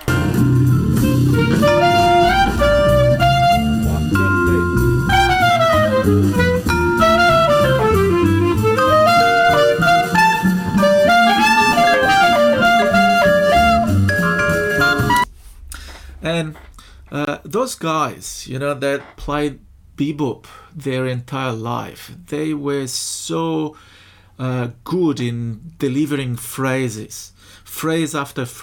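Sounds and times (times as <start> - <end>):
steady full band accompaniment: 0.0 - 15.2
clarinet playing a jazz blues chorus at a slowed tempo: 0.0 - 15.3
speech: 17.7 - 28.6.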